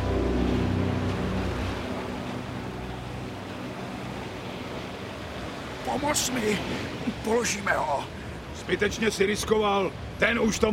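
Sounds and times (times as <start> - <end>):
low rumbling drone: 0.0 - 5.2
rough stormy sea waves roaring: 0.0 - 10.7
speech: 5.9 - 10.7.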